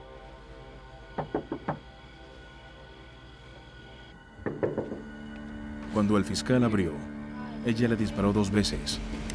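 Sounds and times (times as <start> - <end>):
knocking on a door: 1.2 - 1.9, 4.4 - 5.1
speech: 6.0 - 9.2.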